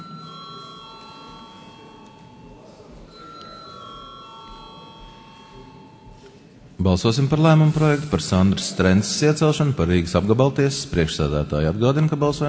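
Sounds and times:
parliamentary session electric bell ringing before a secret-ballot vote: 0.0 - 6.4
faint murmur of room noise: 0.0 - 12.4
speech: 6.8 - 12.4.

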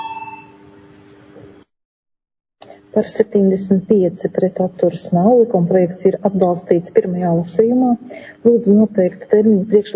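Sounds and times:
electric bell ringing to call a parliamentary vote: 0.0 - 0.6
speech: 2.9 - 9.9.

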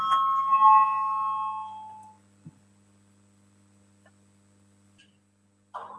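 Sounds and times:
parliamentary voting bell ringing: 0.0 - 2.1
steady low electrical hum: 0.0 - 5.9.

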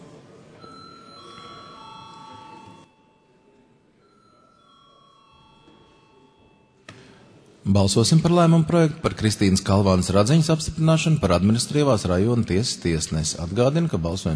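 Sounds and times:
low murmur of a parliament chamber: 0.0 - 14.3
bell signal calling members to a vote in a parliament chamber: 0.6 - 6.8
speech: 7.7 - 14.3.

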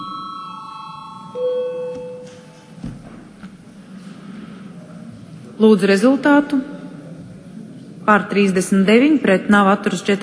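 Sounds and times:
parliamentary voting call bell electronic tone: 0.0 - 2.8
faint room murmur: 0.0 - 10.2
speech: 5.6 - 6.7, 8.1 - 10.2.

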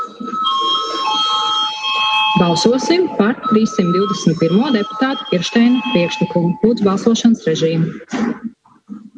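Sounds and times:
parliament session electric bell rung to call deputies before a vote: 0.0 - 7.2
speech: 2.4 - 8.5.

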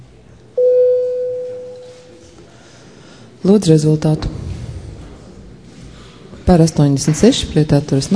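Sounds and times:
parliamentary voting bell steady electronic tone before a vote on a bill: 0.6 - 2.1
speech: 3.4 - 4.4, 6.5 - 8.1.

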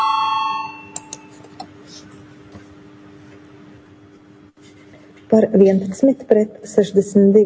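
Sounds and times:
parliamentary voting electric bell ringing: 0.0 - 1.3
speech: 5.3 - 7.4.

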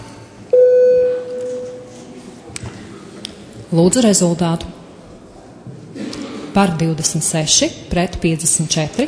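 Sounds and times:
faint chamber noise: 0.0 - 9.0
parliament voting signal electronic tone: 0.5 - 2.0
speech: 3.7 - 4.8, 6.6 - 9.0.

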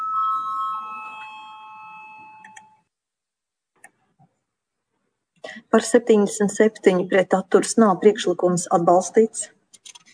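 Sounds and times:
bell rung in a parliamentary chamber to call a vote: 0.0 - 2.9
speech: 5.5 - 9.6.

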